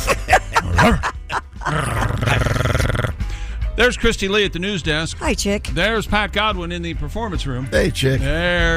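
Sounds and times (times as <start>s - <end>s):
laughter: 0.0s - 2.8s
person imitating a growling dog: 1.7s - 3.2s
speech: 3.8s - 8.7s.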